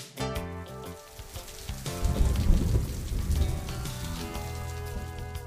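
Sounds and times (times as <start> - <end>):
rain patter: 0.4 - 5.4
thunder rumble: 1.2 - 5.4.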